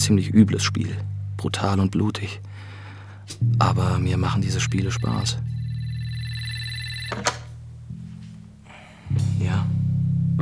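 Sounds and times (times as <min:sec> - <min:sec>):
speech: 0:00.0 - 0:02.5, 0:03.3 - 0:05.5, 0:07.1 - 0:07.4
low hum: 0:00.0 - 0:10.4
telephone ringing with a buzzy electronic tone: 0:04.2 - 0:07.6.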